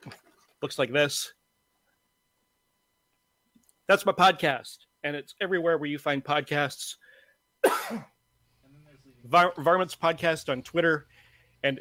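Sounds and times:
speech: 0:00.0 - 0:01.4, 0:03.9 - 0:07.0, 0:07.6 - 0:08.1, 0:09.2 - 0:11.7
person coughing harshly: 0:07.6 - 0:08.2.

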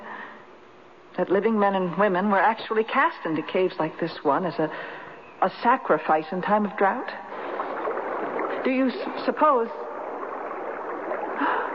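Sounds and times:
speech: 0:01.2 - 0:07.2, 0:08.6 - 0:09.8
rushing churning water filling a crater: 0:07.2 - 0:11.7.

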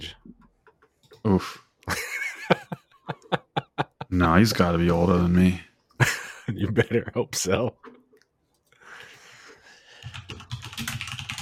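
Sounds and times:
speech: 0:01.2 - 0:02.6, 0:04.2 - 0:05.7, 0:06.5 - 0:07.9
laughter: 0:01.9 - 0:04.6, 0:06.0 - 0:07.6
typing on a computer keyboard: 0:10.0 - 0:11.4.

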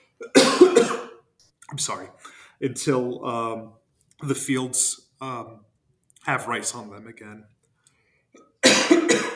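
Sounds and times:
harsh broadband cough: 0:00.2 - 0:01.2, 0:08.6 - 0:09.3
speech: 0:01.7 - 0:07.6
quiet breath: 0:02.2 - 0:02.6, 0:07.8 - 0:08.5.

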